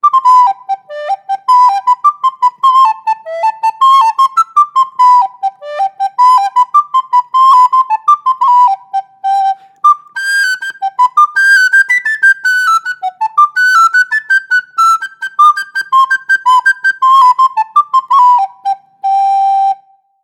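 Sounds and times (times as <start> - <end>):
student soprano recorder: 0.0 - 20.2.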